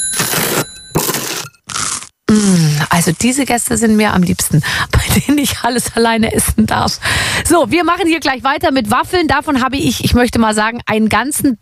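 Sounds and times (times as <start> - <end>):
crisp crunching bites into a warm buttery croissant: 1.1 - 2.1
speech: 2.3 - 11.6.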